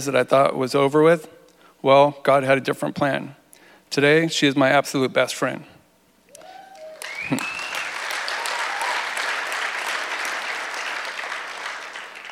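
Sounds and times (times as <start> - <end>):
speech: 0.0 - 5.7, 7.3 - 7.6
person whooping or cheering: 6.3 - 9.2
audience applause: 6.7 - 12.3.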